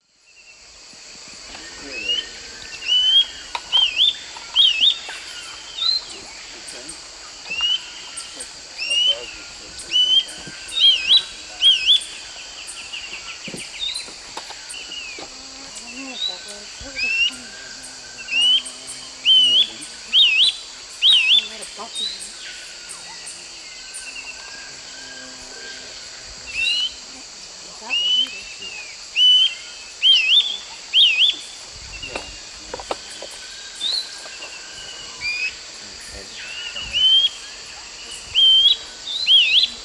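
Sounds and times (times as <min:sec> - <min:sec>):
Tolmomyias poliocephalus singing in South America Eastern Lowlands: 0:00.2 - 0:39.8.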